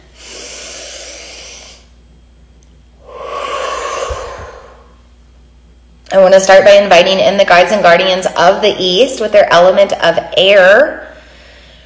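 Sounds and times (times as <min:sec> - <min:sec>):
deep breath taken before an invocation: 0:00.0 - 0:01.9, 0:03.0 - 0:05.0, 0:11.1 - 0:11.8
speech: 0:06.1 - 0:11.1.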